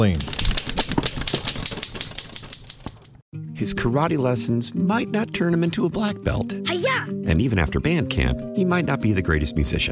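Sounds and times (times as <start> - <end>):
speech: 0.0 - 0.4, 3.6 - 9.9
rapid typewriter typing: 0.0 - 3.2.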